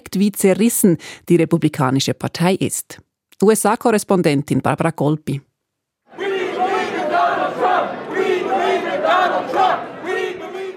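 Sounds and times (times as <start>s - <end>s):
speech: 0.1s - 5.5s
political rally crowd chanting a slogan: 6.1s - 10.7s.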